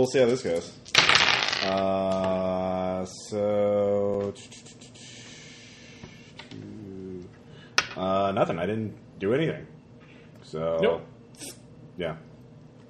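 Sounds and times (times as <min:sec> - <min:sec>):
speech: 0:00.0 - 0:01.0, 0:01.6 - 0:04.8, 0:08.0 - 0:09.7, 0:10.5 - 0:12.3
dice rolled for a called shot clattering on a hard surface: 0:00.8 - 0:02.3.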